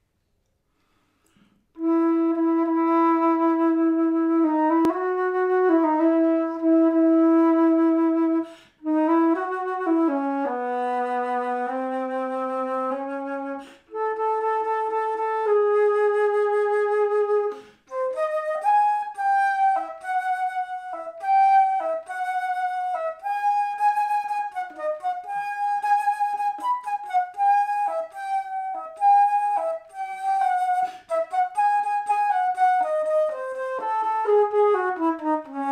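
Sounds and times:
alto flute: 1.3 - 35.7.

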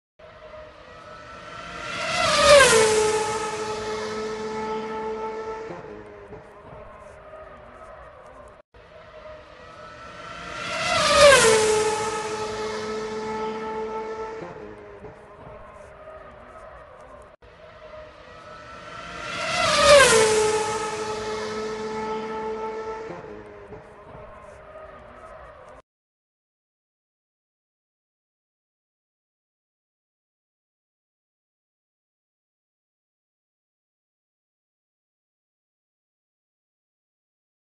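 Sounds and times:
Formula 1 racing car engine: 0.2 - 25.8.

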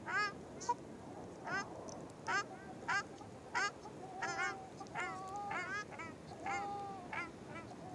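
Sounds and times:
steady background noise: 0.0 - 7.9
ruddy shelduck giving nasal goose-like honks: 2.3 - 7.8.

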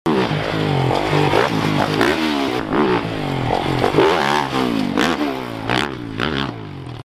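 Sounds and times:
Yamaha motocross bike engine: 0.1 - 7.0.

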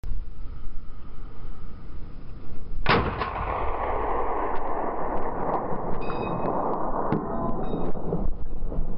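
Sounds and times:
sniper rifle shot: 2.8 - 8.4.

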